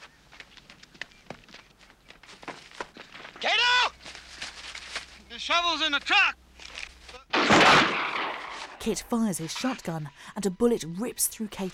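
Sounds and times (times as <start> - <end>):
person running footsteps: 0.0 - 5.2
low noise: 0.0 - 11.7
speech: 5.4 - 6.4, 8.8 - 11.7.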